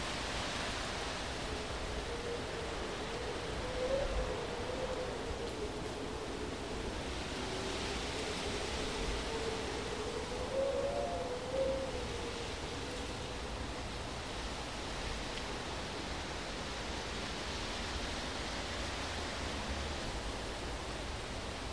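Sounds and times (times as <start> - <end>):
faint wavering wind whistle over rocks: 0.0 - 14.6
wind rushing over rocks on a mountain at golden hour: 0.0 - 21.7.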